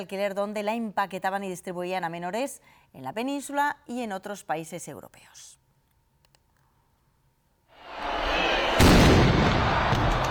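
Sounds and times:
speech: 0.0 - 5.6
crowd cheering outdoors: 7.8 - 10.2
ceremonial cannon blast: 8.0 - 10.2.

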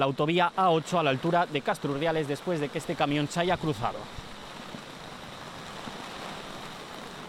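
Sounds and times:
speech: 0.0 - 4.2
rain falling in Cantabria Spain: 0.0 - 7.2.

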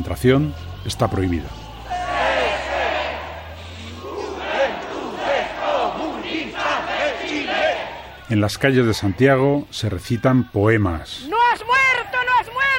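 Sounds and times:
speech: 0.0 - 1.6, 8.3 - 11.7
large funeral crowd in Santiago Chile chanting political slogans in unison: 0.4 - 9.8.

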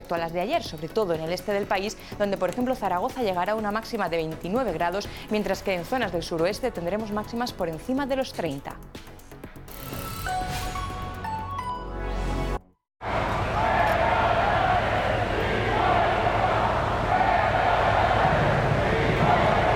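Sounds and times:
speech: 0.1 - 9.0
short musical sting with a rising sweep: 9.7 - 12.7
large crowd booing at a parade: 13.0 - 19.7.

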